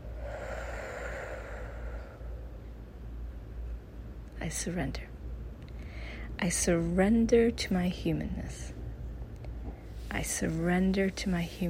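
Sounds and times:
deep breath in and out during a guided meditation: 0:00.0 - 0:02.8, 0:05.8 - 0:06.4
speech: 0:04.4 - 0:05.2, 0:06.4 - 0:08.8, 0:10.2 - 0:11.6.

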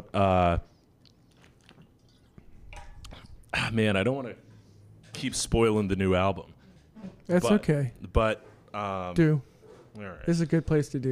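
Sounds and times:
speech: 0:00.1 - 0:00.7, 0:03.6 - 0:04.4, 0:05.2 - 0:11.1
soft mouth clicks: 0:00.8 - 0:01.9
person sipping water with wet slurps: 0:00.8 - 0:03.5.

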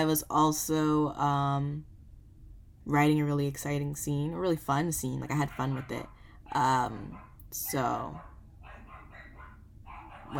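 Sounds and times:
speech: 0:00.0 - 0:01.9, 0:02.9 - 0:08.3
dog barking: 0:05.4 - 0:10.3.

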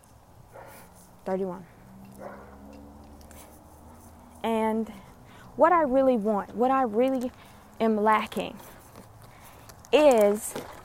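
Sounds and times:
large dog barking: 0:00.5 - 0:00.9, 0:02.1 - 0:02.8
speech: 0:01.3 - 0:02.3, 0:04.4 - 0:08.7, 0:09.9 - 0:10.8.

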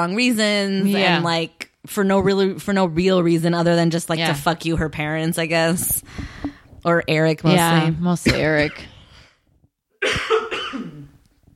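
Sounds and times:
speech: 0:00.0 - 0:08.9, 0:10.0 - 0:10.4
person breathing softly: 0:06.0 - 0:06.8
person coughing raspily: 0:10.0 - 0:11.2.

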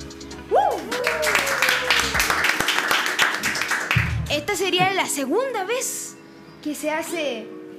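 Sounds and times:
crowd whoops and whistles: 0:00.5 - 0:01.8
live crowd applause: 0:00.7 - 0:04.3
speech: 0:04.5 - 0:06.0, 0:06.6 - 0:07.6.

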